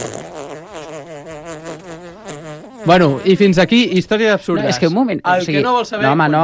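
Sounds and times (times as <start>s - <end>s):
fart sound effect: 0.0s - 3.5s
speech: 2.8s - 6.4s.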